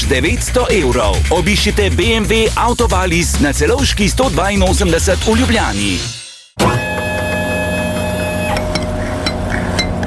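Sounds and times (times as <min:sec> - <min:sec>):
speech: 0:00.1 - 0:06.8
home ice cream maker motor whirring: 0:06.7 - 0:10.0.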